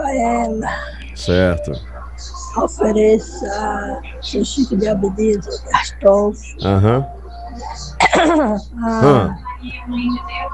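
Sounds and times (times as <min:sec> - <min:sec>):
faint steady hum: 0:00.0 - 0:10.5
speech: 0:00.1 - 0:10.5
person clearing throat: 0:08.0 - 0:09.3.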